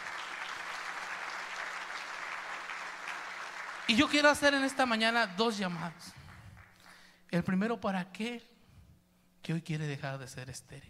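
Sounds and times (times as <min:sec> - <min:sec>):
audience applauding: 0:00.0 - 0:05.2
speech: 0:03.9 - 0:06.2, 0:07.3 - 0:08.5, 0:09.4 - 0:10.8.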